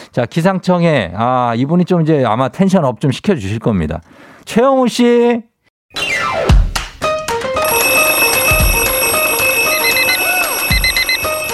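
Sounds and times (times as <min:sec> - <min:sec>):
speech: 0:00.2 - 0:06.1
alarm bell chime rung as a morning wake-up call on a radio program: 0:07.6 - 0:11.5
beeping: 0:07.6 - 0:11.5.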